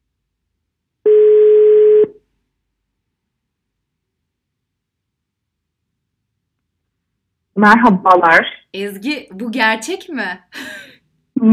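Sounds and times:
telephone ringing tone while a call is placed: 1.1s - 2.1s
speech: 7.6s - 11.5s.

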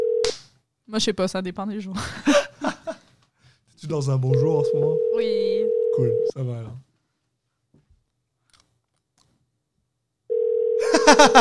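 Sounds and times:
telephone ringback tone: 0.0s - 0.2s, 4.4s - 6.3s, 10.3s - 11.1s
speech: 0.9s - 2.4s, 3.9s - 6.9s, 11.1s - 11.3s
laughter: 2.0s - 3.1s, 10.8s - 11.3s
voicemail voice: 3.8s - 6.8s.

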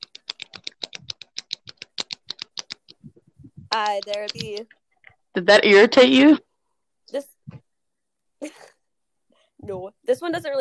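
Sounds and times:
ballpoint pen clicking: 0.0s - 3.0s
speech: 3.8s - 6.5s, 7.1s - 7.3s, 9.7s - 10.5s.

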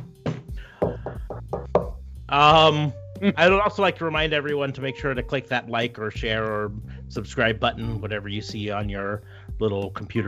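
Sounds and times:
knocking on wood: 0.2s - 2.0s
speech: 2.3s - 10.2s.

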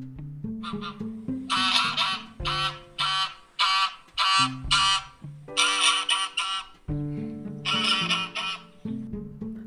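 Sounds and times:
white goose honking threateningly: 0.6s - 6.8s, 7.6s - 8.8s.

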